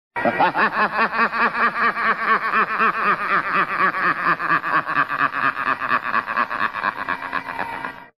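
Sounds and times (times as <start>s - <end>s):
Halloween gorgon laughing: 0.2s - 8.1s.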